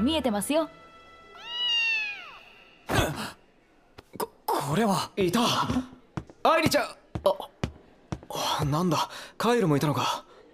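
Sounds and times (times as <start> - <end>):
speech: 0.0 - 0.8, 4.6 - 7.5, 8.3 - 10.3
cat meowing: 1.4 - 2.6.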